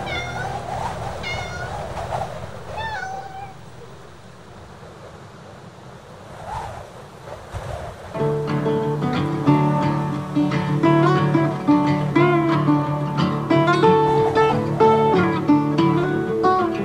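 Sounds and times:
cat meowing on a prairie: 0:00.0 - 0:01.9, 0:02.7 - 0:03.9
steady rushing wash: 0:00.0 - 0:16.8.

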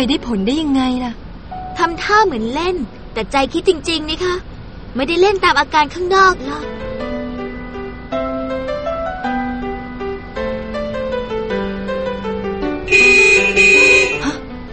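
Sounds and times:
speech: 0:00.0 - 0:01.2, 0:01.8 - 0:06.8
melodic tonal sound: 0:00.0 - 0:03.3, 0:05.2 - 0:14.7
car horn honking at a dog: 0:12.9 - 0:14.4.

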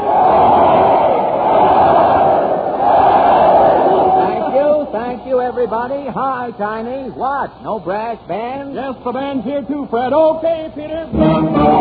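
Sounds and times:
large crowd cheering at a train station: 0:00.0 - 0:05.2, 0:11.2 - 0:11.7
speech: 0:05.6 - 0:11.7.

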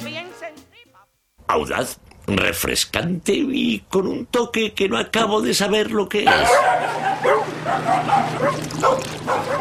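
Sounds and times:
speech: 0:01.5 - 0:08.6
dog barking: 0:06.3 - 0:09.5.

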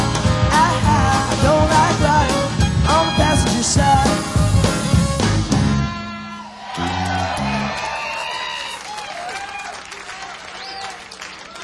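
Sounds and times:
band music: 0:00.0 - 0:08.8
live crowd yelling and cheering: 0:00.0 - 0:11.6.

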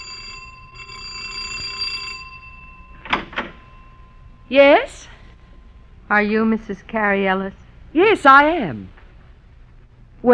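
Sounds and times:
doorbell buzzing in bright insistent bursts: 0:00.0 - 0:05.4
speech: 0:04.5 - 0:05.1, 0:06.1 - 0:09.0.

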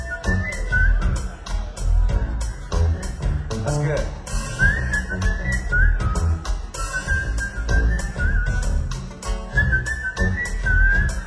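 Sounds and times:
person whistling a short sliding melody: 0:00.0 - 0:01.4, 0:04.4 - 0:11.2
steady punchy musical beat: 0:00.0 - 0:11.2.

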